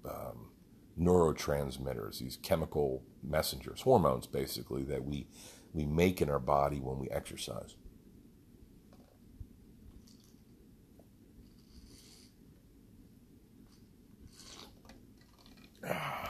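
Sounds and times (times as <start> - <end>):
speech: 1.0 - 7.8
soft slurping sips of ice water: 14.3 - 15.8.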